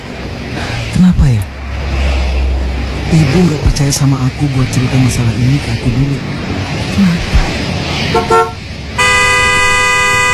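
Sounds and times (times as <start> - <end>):
rumble of road and engine noise: 0.0 - 10.3
speech: 1.0 - 1.5, 3.1 - 7.3, 8.1 - 8.6
car horn honking: 8.1 - 10.3.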